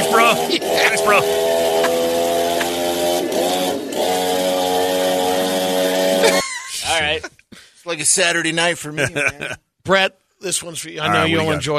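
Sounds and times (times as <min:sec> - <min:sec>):
laughter: 0:00.0 - 0:02.9, 0:06.0 - 0:07.4, 0:08.8 - 0:09.6
chainsaw running: 0:00.0 - 0:06.4
speech: 0:07.9 - 0:11.7.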